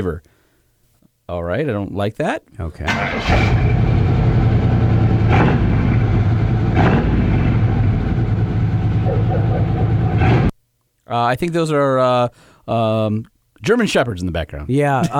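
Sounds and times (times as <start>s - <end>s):
speech: 0.0s - 0.3s, 1.3s - 3.8s, 11.1s - 15.1s
heavy truck engine idling: 3.6s - 10.4s
clanks and bumps: 5.2s - 7.8s.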